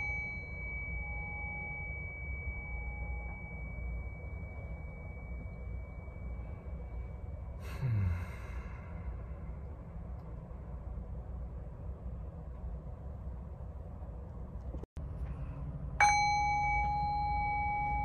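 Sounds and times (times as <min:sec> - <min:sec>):
single bright bell struck: 0:00.0 - 0:07.5, 0:16.0 - 0:18.0
low steady rumble of noise: 0:00.0 - 0:18.0.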